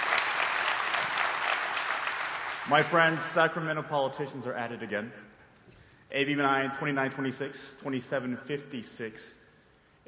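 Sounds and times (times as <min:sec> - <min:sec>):
audience applause at a political speech: 0:00.0 - 0:03.0
speech: 0:02.6 - 0:05.3, 0:06.1 - 0:09.4.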